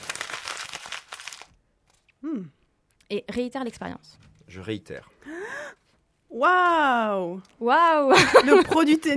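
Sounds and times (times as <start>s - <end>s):
sheet of paper crumpled into a ball: 0.0s - 2.0s
speech: 3.1s - 5.4s, 6.4s - 9.1s.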